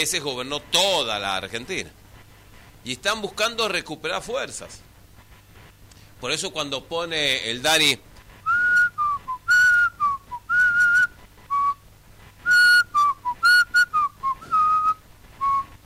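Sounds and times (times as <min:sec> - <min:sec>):
speech: 0:00.0 - 0:02.0, 0:02.8 - 0:04.9, 0:06.2 - 0:08.1
person whistling a melody softly: 0:08.5 - 0:11.8, 0:12.4 - 0:15.7.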